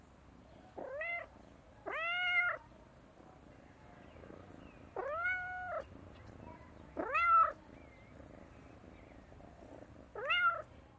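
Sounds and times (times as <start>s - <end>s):
cat meowing: 0.8s - 2.6s, 5.0s - 5.8s, 7.0s - 7.6s, 10.2s - 10.7s.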